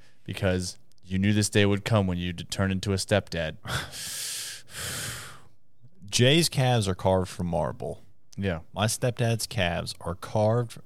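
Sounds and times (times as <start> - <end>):
speech: 0.2 - 5.0, 6.1 - 10.8
deep breathing: 3.6 - 5.6.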